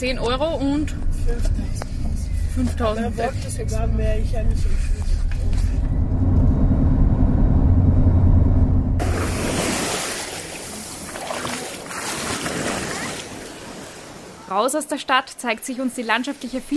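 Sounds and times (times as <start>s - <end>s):
speech: 0.0s - 1.9s, 2.6s - 5.7s, 14.5s - 16.7s
low steady rumble: 0.0s - 9.6s
ocean waves breaking on a sandy Atlantic beach in Cameroon: 9.0s - 14.5s.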